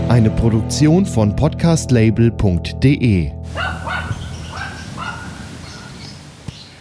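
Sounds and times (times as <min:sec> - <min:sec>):
speech: 0:00.1 - 0:03.7
dog barking echoing across a valley: 0:03.5 - 0:06.1.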